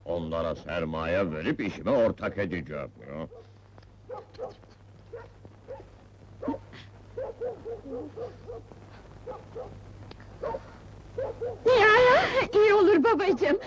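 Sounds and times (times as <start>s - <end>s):
speech: 0.2s - 3.4s, 7.4s - 10.6s, 11.2s - 13.6s
dog barking: 3.3s - 9.8s, 10.4s - 11.8s, 13.2s - 13.6s.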